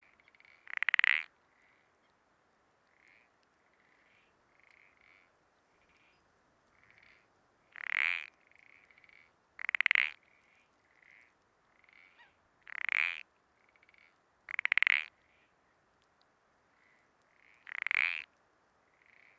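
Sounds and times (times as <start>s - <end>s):
spotted parsley frog calling: 0.1s - 1.9s, 2.8s - 15.8s, 16.7s - 18.3s, 18.9s - 19.3s.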